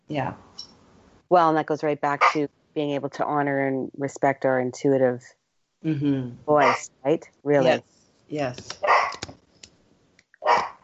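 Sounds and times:
speech: 0.1s - 0.7s, 1.3s - 8.9s
dog barking: 6.6s - 6.8s, 8.8s - 9.2s, 10.4s - 10.8s.

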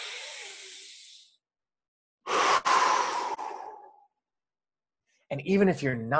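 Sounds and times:
deep intentional breath: 0.0s - 1.4s, 2.2s - 4.2s
speech: 5.3s - 6.1s.

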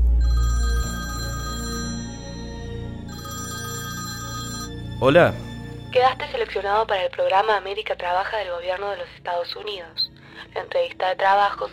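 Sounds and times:
telephone ringing with a bright electronic ringtone: 0.0s - 4.9s
speech: 5.0s - 11.7s.

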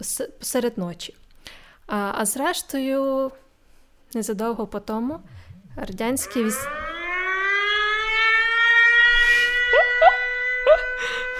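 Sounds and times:
speech: 0.0s - 3.4s, 4.1s - 6.8s
air raid siren wailing: 5.2s - 11.3s.

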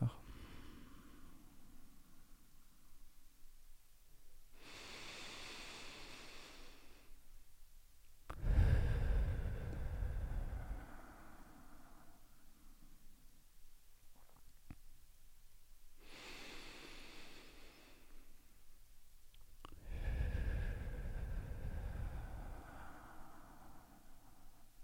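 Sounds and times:
deep breathing during a meditation: 0.0s - 3.1s, 4.5s - 7.4s, 8.3s - 13.4s, 16.0s - 18.8s, 19.6s - 24.8s.

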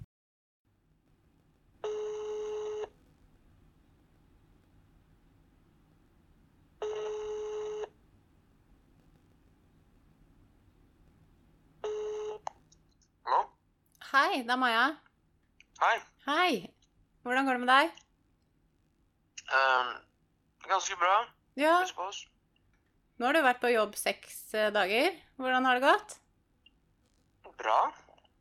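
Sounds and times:
outgoing telephone call ring tones: 1.8s - 2.9s, 6.8s - 7.9s, 11.8s - 12.5s
speech: 14.2s - 15.0s, 15.8s - 18.0s, 19.5s - 20.0s, 20.7s - 22.3s, 23.2s - 26.2s, 27.6s - 28.0s.

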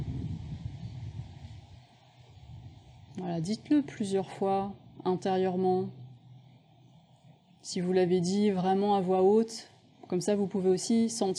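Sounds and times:
steady wind buffeting an outdoor microphone: 0.0s - 3.1s
speech: 3.2s - 6.0s, 7.6s - 11.3s.

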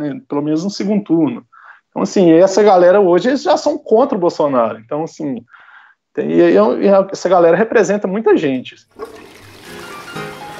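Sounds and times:
speech: 0.0s - 5.6s, 6.2s - 9.3s
toilet flushing: 8.9s - 10.5s.

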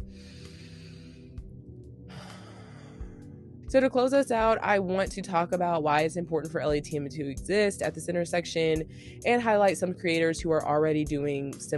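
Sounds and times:
big deep breath with long inhale and rushing exhale: 0.0s - 1.5s, 2.1s - 3.4s, 8.9s - 9.2s
speech: 3.7s - 11.7s.

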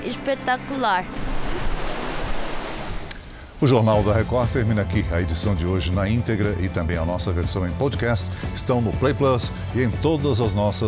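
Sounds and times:
ocean waves breaking: 0.0s - 3.8s
speech: 0.1s - 1.2s, 3.6s - 10.8s
wind noise: 0.8s - 3.7s.

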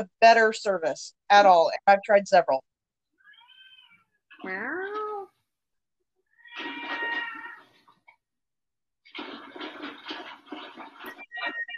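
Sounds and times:
speech: 0.0s - 2.7s, 4.4s - 5.0s
cat meowing: 6.3s - 7.7s.

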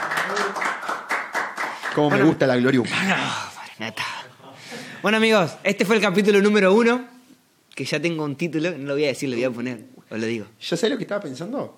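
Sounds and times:
sharp hand claps: 0.0s - 2.4s
speech: 2.0s - 4.2s, 5.0s - 7.1s, 7.8s - 11.7s.

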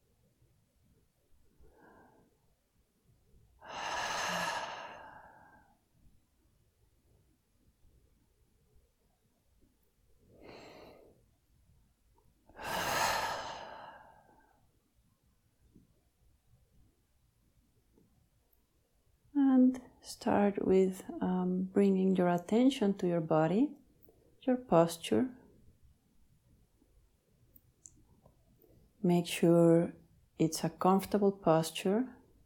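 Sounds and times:
slow deep breaths: 1.6s - 2.5s, 3.6s - 5.9s, 10.3s - 11.4s, 12.5s - 14.7s
speech: 19.7s - 23.8s, 24.4s - 25.4s, 29.0s - 32.2s.

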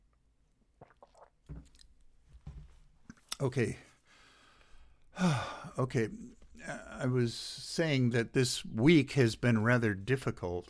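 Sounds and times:
someone sipping and swallowing grape juice: 0.6s - 2.0s
speech: 3.4s - 3.9s, 5.2s - 10.6s.

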